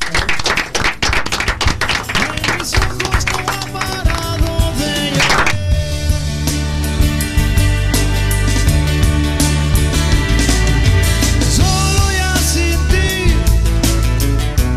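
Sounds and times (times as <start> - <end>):
dense rapid applause: 0.0 - 5.6
music playing: 0.9 - 14.7.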